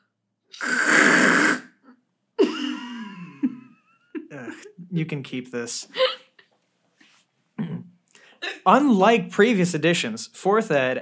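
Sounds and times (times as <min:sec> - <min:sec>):
nose blowing into a tissue: 0:00.5 - 0:02.0
speech: 0:04.4 - 0:06.1, 0:08.7 - 0:11.0.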